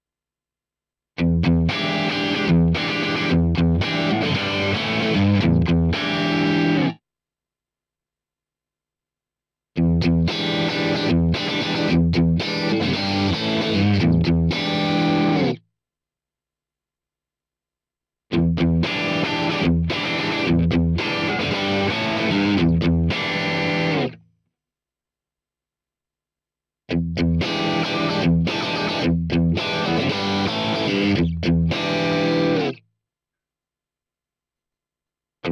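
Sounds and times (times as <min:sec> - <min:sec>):
electric guitar through a single coil pickup: 0:01.2 - 0:07.0, 0:09.8 - 0:15.6, 0:18.3 - 0:24.2, 0:26.9 - 0:32.8.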